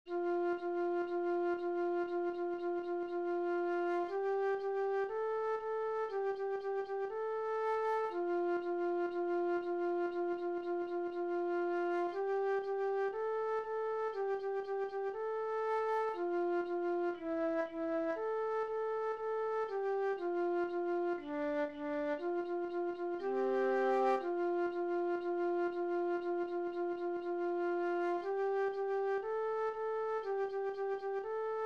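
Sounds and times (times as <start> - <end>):
solo flute study piece: 0.1 - 31.6.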